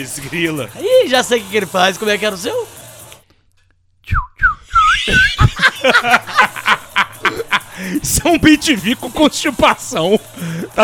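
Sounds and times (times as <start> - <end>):
speech: 0.0 - 2.8, 5.1 - 6.5, 7.8 - 10.8
person whistling a short personal signature call of sliding downward notes: 4.0 - 5.4
laughter: 4.8 - 8.5, 10.0 - 10.8.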